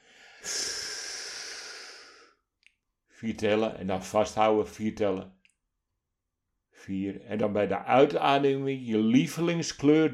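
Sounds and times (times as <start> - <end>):
deep slow inhalation during a breathing exercise: 0.0 - 2.5
speech: 3.2 - 5.4, 6.9 - 10.1.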